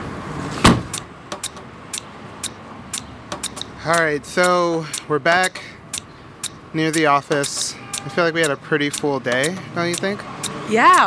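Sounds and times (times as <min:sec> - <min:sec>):
quiet street background: 0:00.0 - 0:11.0
taxi door slamming shut: 0:00.6 - 0:01.0
speech: 0:03.8 - 0:05.8, 0:06.7 - 0:11.0.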